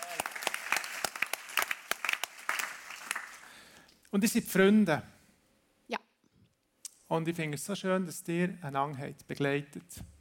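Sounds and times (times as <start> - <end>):
crowd applauding: 0.0 - 3.7
speech: 4.1 - 5.1, 7.1 - 10.1.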